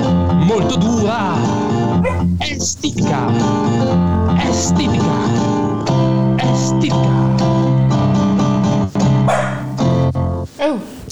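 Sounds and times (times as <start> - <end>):
full harmonic music: 0.0 - 10.6
speech: 0.5 - 1.5, 2.5 - 5.6, 6.6 - 7.5
dog barking in time with a song: 2.0 - 2.4, 9.3 - 9.8.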